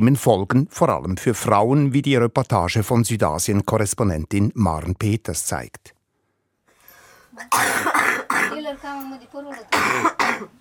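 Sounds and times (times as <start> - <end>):
speech: 0.0 - 6.0, 7.4 - 10.5
strained voiced breaths and throat sounds: 6.2 - 7.5
dry coughing: 7.4 - 8.7, 9.7 - 10.5.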